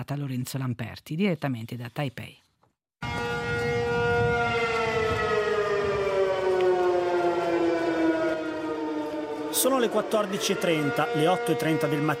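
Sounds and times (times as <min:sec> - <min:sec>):
speech: 0:00.0 - 0:02.4, 0:09.6 - 0:12.1
air raid siren wailing: 0:03.0 - 0:12.1.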